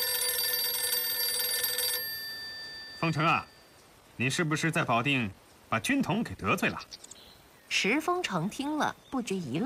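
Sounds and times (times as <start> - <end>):
electronic telephone ringing tone for an incoming call: 0.0 - 3.7
quiet hiss: 2.0 - 9.6
speech: 3.0 - 3.5, 4.2 - 7.1, 7.7 - 9.6.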